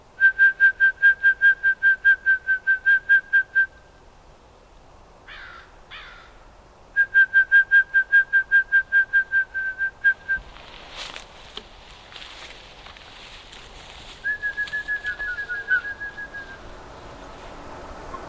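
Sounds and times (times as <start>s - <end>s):
person whistling a rapid trill imitating a toad's call: 0.2s - 3.8s, 7.0s - 10.4s, 14.2s - 16.6s
brief rustling: 10.4s - 15.9s.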